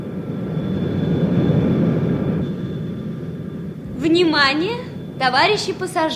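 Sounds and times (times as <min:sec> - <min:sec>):
airplane engine roar during landing: 0:00.0 - 0:06.1
faint high whine of airplane engine: 0:00.0 - 0:06.1
speech: 0:04.1 - 0:06.1.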